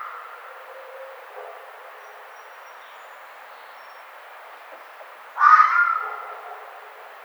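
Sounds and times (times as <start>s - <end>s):
red fox barking: 5.4s - 7.1s.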